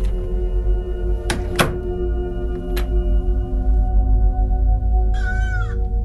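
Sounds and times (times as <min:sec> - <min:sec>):
steady low hum: 0:00.0 - 0:06.0
door being shut: 0:01.2 - 0:01.9.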